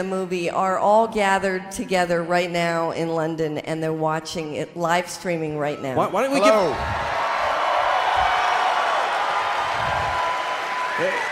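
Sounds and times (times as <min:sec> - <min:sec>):
speech: 0:00.0 - 0:07.1, 0:11.0 - 0:11.2
crowd cheering: 0:06.4 - 0:11.3
large crowd applauding: 0:06.9 - 0:11.3.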